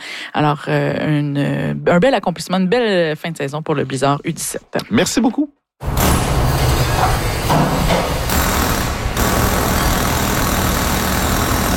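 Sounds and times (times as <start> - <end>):
speech: 0.4 - 5.9
mechanical rattling and hammering in a car garage fitting winter tires: 5.8 - 11.7.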